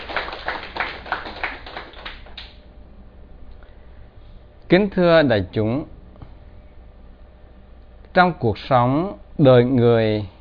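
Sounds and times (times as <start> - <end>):
audience applause at a Buddhist dharma talk: 0.0 - 2.6
speech: 4.7 - 5.9, 8.2 - 10.3.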